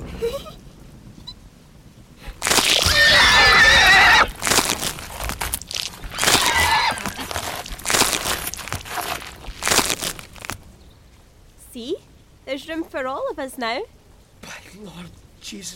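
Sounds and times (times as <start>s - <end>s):
crunching and rustling: 2.3s - 10.8s
horse whinnying: 2.5s - 4.5s, 6.0s - 9.1s
speech: 13.0s - 14.0s, 14.8s - 15.7s.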